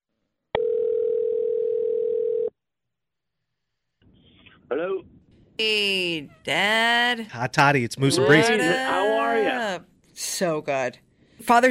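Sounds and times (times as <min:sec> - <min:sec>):
ringback tone from an outgoing phone call: 0:00.6 - 0:02.5
speech: 0:04.7 - 0:11.6.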